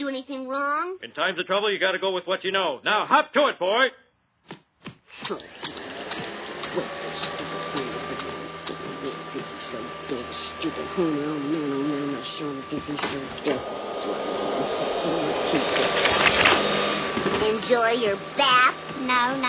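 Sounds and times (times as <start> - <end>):
speech: 0.2 - 4.0, 5.2 - 5.8, 6.8 - 7.5, 9.7 - 14.4, 17.4 - 19.4
vocal sounds and groans: 5.1 - 16.6
vacuum cleaner running: 5.3 - 19.4.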